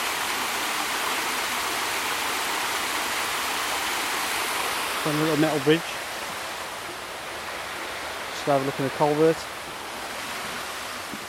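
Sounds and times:
water pouring over artificially dammed steps of a pond: 0:00.0 - 0:11.2
speech: 0:05.0 - 0:06.0, 0:08.4 - 0:09.6.

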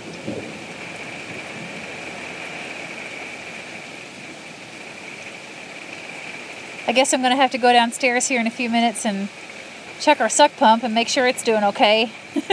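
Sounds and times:
distant thunder rumbling: 0:00.0 - 0:12.4
gusting wind: 0:00.0 - 0:12.5
heavy rain: 0:00.0 - 0:12.5
speech: 0:06.9 - 0:09.4, 0:10.0 - 0:12.5.

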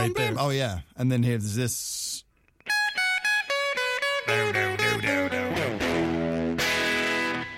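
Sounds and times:
speech: 0:00.3 - 0:02.1, 0:04.3 - 0:05.2
distorted electric guitar playing a riff: 0:02.7 - 0:07.5.

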